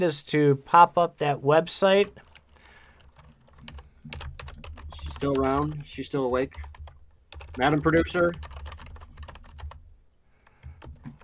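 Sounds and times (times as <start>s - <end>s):
speech: 0.0s - 2.3s, 5.2s - 6.7s, 7.6s - 8.5s
rapid computer keyboard typing: 2.0s - 9.8s, 10.4s - 11.2s.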